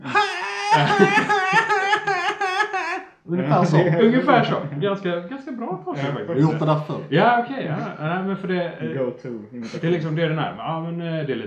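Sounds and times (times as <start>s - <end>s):
person imitating a seagull call: 0.0s - 3.0s
laughter: 0.0s - 4.9s
speech: 0.8s - 1.3s, 3.3s - 11.4s.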